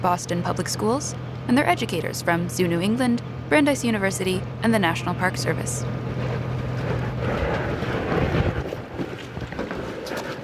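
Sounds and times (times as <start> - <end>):
speech: 0.0 - 6.4
small ferry boat engine droning: 0.0 - 10.4
rushing wind: 5.8 - 10.4
water noise: 6.0 - 10.4.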